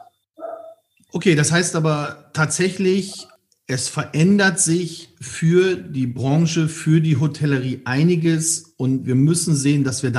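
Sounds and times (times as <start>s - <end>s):
German shepherd dog barking: 0.0s - 0.8s
speech: 1.1s - 10.1s.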